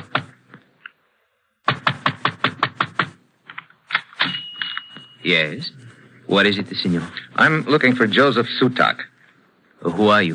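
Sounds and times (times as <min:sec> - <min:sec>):
heavy pounding on a wooden shop door: 0:01.6 - 0:03.2
speech: 0:05.2 - 0:09.1, 0:09.8 - 0:10.3.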